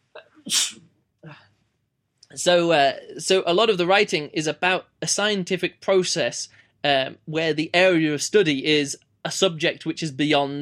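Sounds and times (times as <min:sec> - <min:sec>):
person sneezing: 0:00.2 - 0:01.5
speech: 0:00.5 - 0:00.8, 0:02.4 - 0:10.6.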